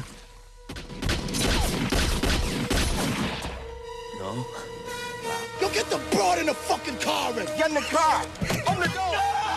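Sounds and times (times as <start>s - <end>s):
heavy crossfire gunfire during a shootout: 0.9s - 3.4s
speech: 4.3s - 4.8s, 5.8s - 9.4s.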